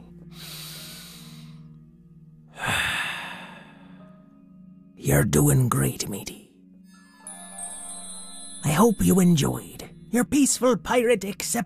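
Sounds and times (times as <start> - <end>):
deep breaths during a guided meditation: 0.2 - 1.8, 2.5 - 4.3
speech: 5.0 - 6.4, 8.7 - 11.6.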